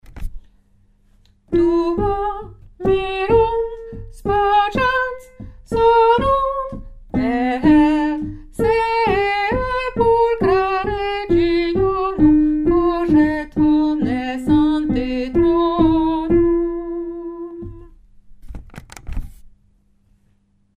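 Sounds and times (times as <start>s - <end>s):
alto voice singing a chorale: 1.5s - 17.9s.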